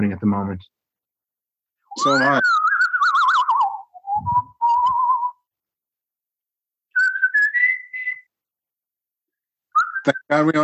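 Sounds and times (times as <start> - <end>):
speech: 0.0 - 0.8, 2.0 - 2.7, 10.0 - 10.6
loud human whistling with warbling trills: 1.9 - 5.4, 6.9 - 8.3, 9.7 - 10.2.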